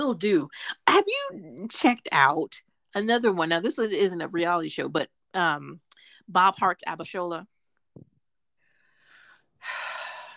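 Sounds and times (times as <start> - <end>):
speech: 0.0 - 8.1
person taking a deep breath mid-conversation: 8.6 - 10.3.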